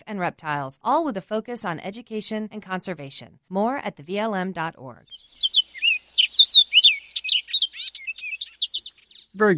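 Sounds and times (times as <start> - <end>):
speech: 0.0 - 5.2, 9.4 - 9.5
European starling singing: 5.1 - 9.5.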